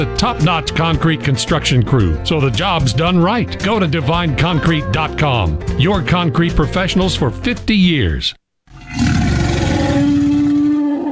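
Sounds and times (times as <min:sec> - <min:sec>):
speech: 0:00.0 - 0:08.4
dinosaur roar sound effect: 0:08.7 - 0:11.0.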